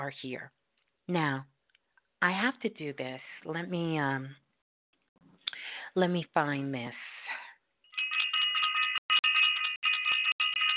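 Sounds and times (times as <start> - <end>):
speech: 0.0 - 1.5, 2.2 - 4.4, 6.0 - 7.4
bell ringing rapidly: 7.9 - 10.7.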